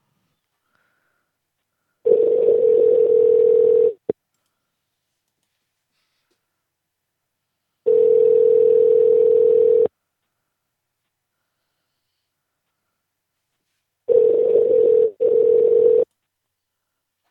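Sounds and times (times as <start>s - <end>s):
telephone ringback tone on an outgoing call: 2.1s - 4.0s, 7.9s - 9.9s, 14.1s - 16.1s.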